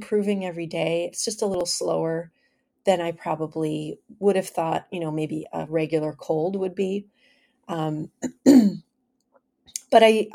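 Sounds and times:
speech: 0.0s - 8.8s, 9.9s - 10.3s
man clearing his throat: 8.2s - 8.8s.

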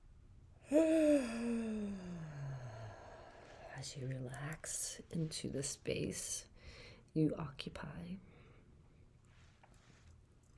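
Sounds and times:
speech: 0.7s - 1.4s, 3.8s - 8.3s
long voiced yawn: 0.7s - 3.8s.

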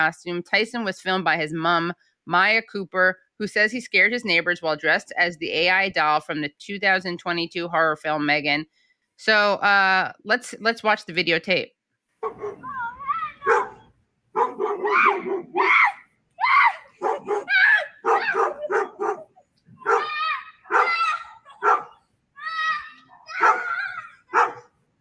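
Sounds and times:
speech: 0.0s - 12.8s, 14.4s - 15.9s
agitated dog barking: 12.2s - 12.8s, 13.4s - 15.7s, 17.0s - 22.0s, 23.3s - 24.7s
dog yelping and whining: 12.2s - 24.7s.

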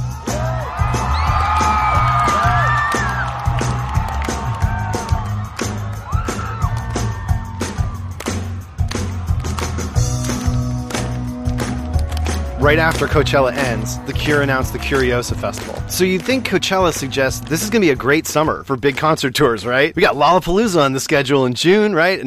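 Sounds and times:
concert crowd cheering wildly during encore: 0.0s - 18.2s
speech: 12.6s - 22.2s.

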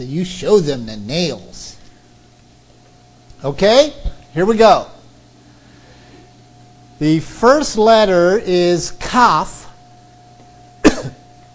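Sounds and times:
speech: 0.0s - 1.8s, 3.4s - 4.9s, 7.0s - 9.6s
man coughing: 10.8s - 11.3s.

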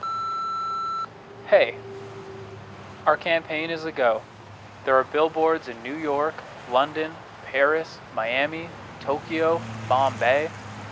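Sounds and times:
voicemail recording beep: 0.0s - 1.1s
speech: 1.5s - 2.0s, 3.0s - 10.6s.

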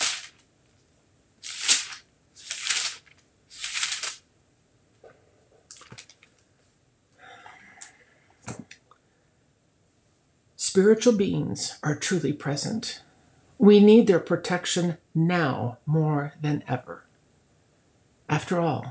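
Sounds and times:
Bible paper pages flipping: 0.0s - 0.5s, 1.4s - 4.2s, 5.7s - 6.4s
speech: 10.8s - 17.1s, 18.4s - 18.8s.

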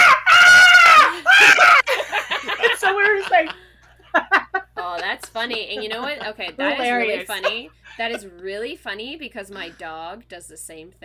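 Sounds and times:
voice imitating a young girl screaming while swimming: 0.0s - 1.8s
laughter: 0.9s - 8.3s
speech: 5.4s - 11.0s.

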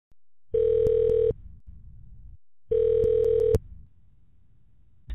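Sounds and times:
ringback tone of an outgoing phone call: 0.6s - 1.4s, 2.7s - 3.6s.

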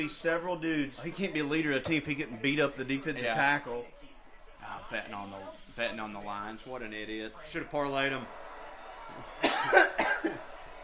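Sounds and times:
speech: 0.0s - 4.0s, 4.6s - 8.4s, 9.2s - 10.5s
harsh raspy coughs: 9.4s - 10.4s.

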